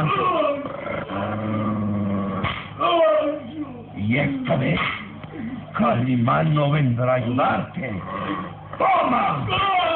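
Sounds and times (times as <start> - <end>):
large mastiff growling and snarling: 0.0 - 2.7, 7.9 - 8.6
speech: 4.1 - 5.0, 5.8 - 9.8.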